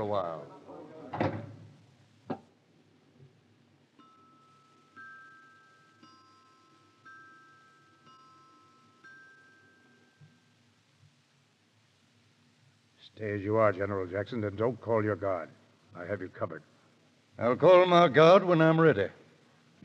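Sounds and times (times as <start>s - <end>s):
speech: 0.0s - 1.4s, 13.2s - 16.7s, 17.4s - 19.2s
door closing with a thump: 1.1s - 1.7s
soft sustained tones: 3.7s - 11.0s.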